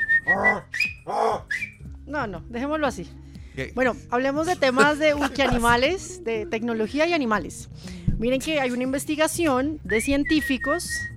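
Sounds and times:
person whistling sharply to call a dog: 0.0s - 1.8s, 9.9s - 11.1s
speech: 0.3s - 1.1s, 2.1s - 11.1s
laughter: 4.5s - 5.9s.

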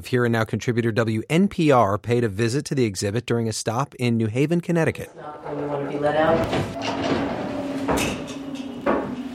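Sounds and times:
speech: 0.0s - 8.3s
heavy metal sliding prison cell door rumbling and squealing along its track: 5.4s - 9.3s
heavy metal sliding prison cell door clanking shut: 6.2s - 9.3s.

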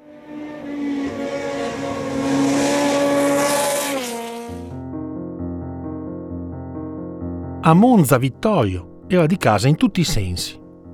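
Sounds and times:
racing car engine passing by on a race track: 0.0s - 4.7s
music: 4.5s - 10.9s
speech: 7.7s - 10.6s.

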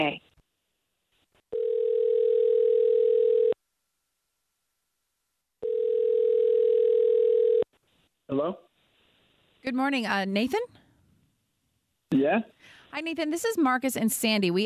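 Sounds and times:
speech: 0.0s - 0.3s, 8.3s - 8.7s, 9.6s - 10.8s, 12.1s - 14.6s
electronic ringback tones of an outgoing phone call: 1.5s - 3.6s, 5.6s - 7.6s.

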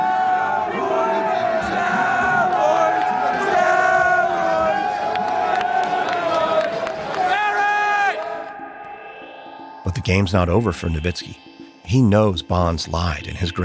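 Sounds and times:
stadium crowd chanting taunts: 0.0s - 9.3s
speech: 10.1s - 13.6s.

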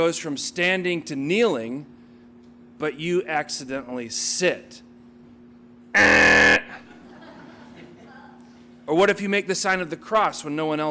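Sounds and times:
speech: 0.0s - 2.0s, 2.8s - 4.9s, 6.0s - 6.6s, 8.9s - 10.8s
loud harsh buzzer blaring: 6.0s - 6.8s
low steady hum: 6.0s - 7.0s.

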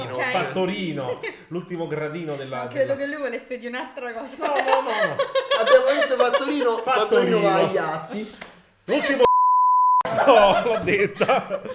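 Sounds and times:
speech: 0.2s - 9.2s, 10.3s - 11.7s
laughter: 4.3s - 9.3s, 10.0s - 11.7s
steady high-pitched censorship bleep: 9.2s - 10.1s.

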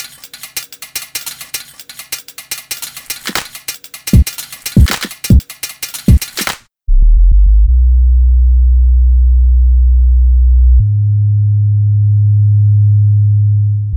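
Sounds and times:
clattering percussive scraping hits: 0.0s - 6.6s
warm deep sub-bass tone: 6.9s - 13.9s.

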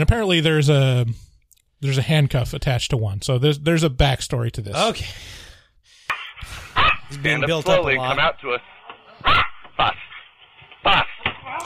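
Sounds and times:
speech: 0.0s - 5.5s, 6.4s - 10.0s
dog barking aggressively: 6.8s - 7.1s, 9.2s - 10.2s.

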